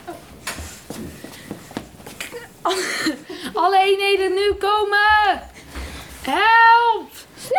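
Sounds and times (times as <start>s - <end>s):
running footsteps on a hard floor: 0.1s - 2.4s, 4.1s - 6.1s
speech: 2.6s - 3.0s, 3.6s - 5.5s, 6.3s - 7.0s.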